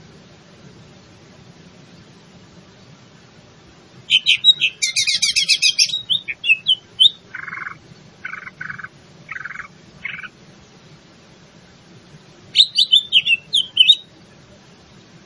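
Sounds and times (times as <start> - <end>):
Greater green leafbird song with whistles and rattling trill: 4.1 - 10.3, 12.5 - 14.1.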